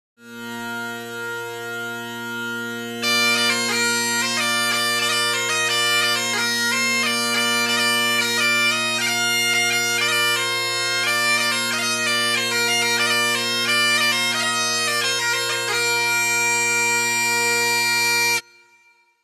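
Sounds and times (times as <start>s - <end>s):
bagpipes: 0.2s - 18.6s.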